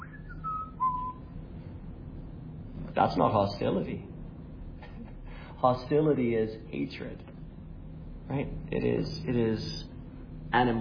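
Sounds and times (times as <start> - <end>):
person whistling a tune: 0.0 - 1.2
speech: 3.0 - 4.1, 5.6 - 7.3, 8.3 - 9.9, 10.5 - 10.8.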